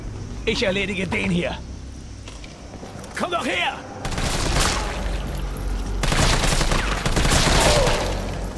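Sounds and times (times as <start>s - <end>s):
speech: 0.4s - 1.7s, 3.2s - 3.9s
rapid fusillade of gunshots: 4.0s - 4.9s, 6.0s - 8.2s.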